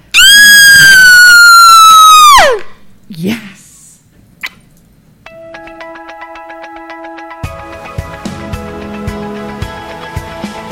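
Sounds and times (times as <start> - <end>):
woman's long piercing horror-movie scream: 0.1 - 2.7.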